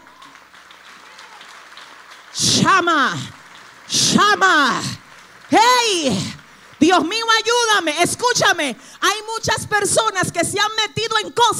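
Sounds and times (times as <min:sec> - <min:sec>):
audience applause: 0:00.0 - 0:07.9
speech: 0:02.4 - 0:11.5.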